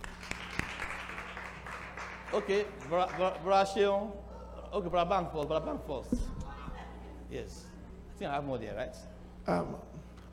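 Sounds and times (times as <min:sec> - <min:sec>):
group clapping in a roomy space: 0:00.0 - 0:03.9
speech: 0:02.3 - 0:06.3, 0:07.3 - 0:10.0.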